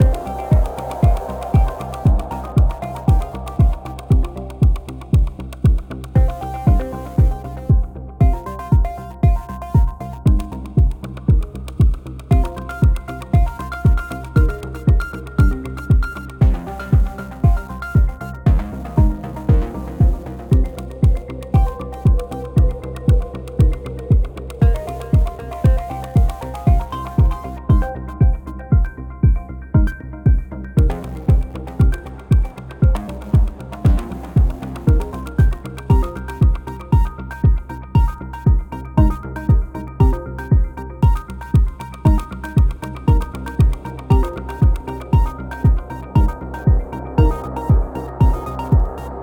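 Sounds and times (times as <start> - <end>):
game music loop at 117 BPM: 0.0 - 49.2.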